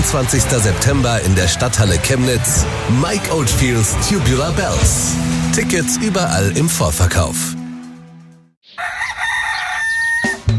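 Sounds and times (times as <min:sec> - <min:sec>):
speech: 0:00.0 - 0:07.6
rooster crowing: 0:08.7 - 0:10.5.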